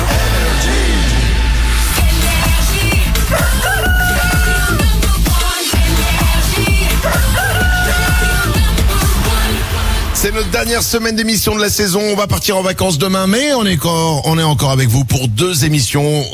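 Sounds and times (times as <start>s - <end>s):
loud dense musical backing with a steady beat: 0.0s - 10.3s
rooster crowing: 3.3s - 4.8s, 7.0s - 8.6s
speech: 10.6s - 16.3s.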